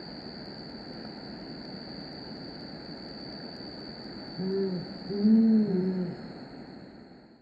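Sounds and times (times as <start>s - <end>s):
steady high whine: 0.0s - 7.3s
brown fish owl pair hooting in duet: 4.4s - 6.2s.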